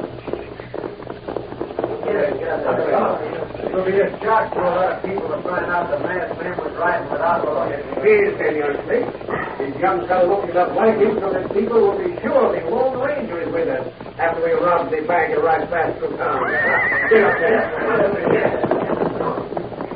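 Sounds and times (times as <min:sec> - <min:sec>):
riders' horses' hooves clip-clopping along a trail in a gully: 0:00.0 - 0:19.9
people talking: 0:02.0 - 0:19.9
horse whinnying shrilly on a trail in a gully: 0:16.2 - 0:18.6.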